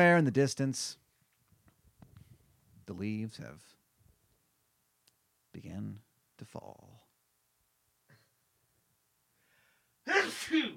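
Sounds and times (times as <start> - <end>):
speech: 0.0 - 1.0, 2.9 - 3.8, 5.6 - 7.0, 10.3 - 10.7
loud sneeze: 10.1 - 10.7.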